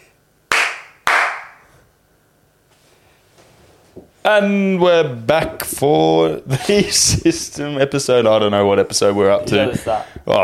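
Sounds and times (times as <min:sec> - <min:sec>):
hand claps: 0:00.0 - 0:01.6
speech: 0:04.2 - 0:10.4.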